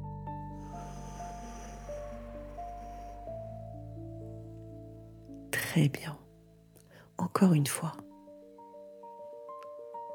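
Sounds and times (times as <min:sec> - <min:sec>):
sustained ambient music tones: 0:00.0 - 0:10.1
deep inhale through the nose and slow exhale: 0:00.5 - 0:05.0
speech: 0:05.8 - 0:06.2, 0:07.3 - 0:08.0.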